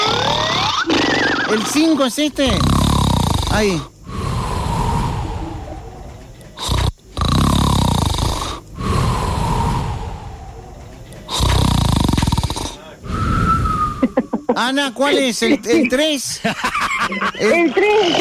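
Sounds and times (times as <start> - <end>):
loud snoring with heavy breathing: 0.0 - 5.9, 6.6 - 10.5, 11.3 - 13.8
speech: 1.5 - 2.8, 3.5 - 3.9, 14.2 - 18.1
laughter: 14.0 - 18.1.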